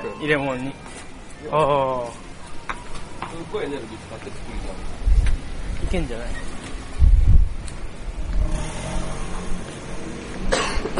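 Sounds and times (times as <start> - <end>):
vehicles rumbling past on a busy road: 0.0 - 10.9
speech: 0.2 - 2.3, 3.3 - 5.0, 5.8 - 6.5
car surging past: 8.2 - 10.5.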